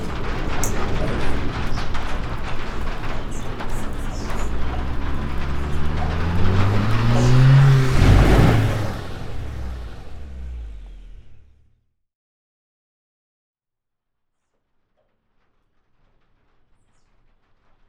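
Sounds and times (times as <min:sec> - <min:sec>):
car engines rumbling and revving: 0:00.0 - 0:11.7
steady road noise: 0:00.0 - 0:11.7.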